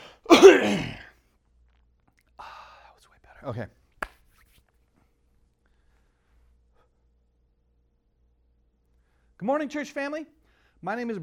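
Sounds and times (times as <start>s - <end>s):
short raspy throat clearing: 0.3s - 1.1s
speech: 3.4s - 3.8s, 9.4s - 11.2s.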